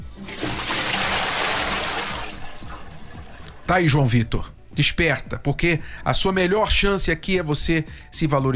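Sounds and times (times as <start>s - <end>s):
water pouring from a bucket: 0.0s - 3.7s
speech: 3.7s - 8.5s.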